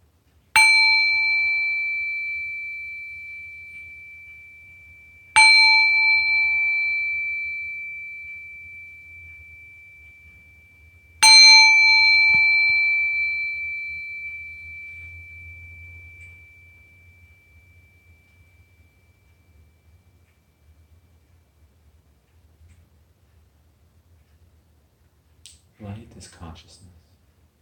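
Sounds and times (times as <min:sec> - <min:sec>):
resonant bell ringing: 0:00.6 - 0:20.1
speech: 0:25.8 - 0:27.1.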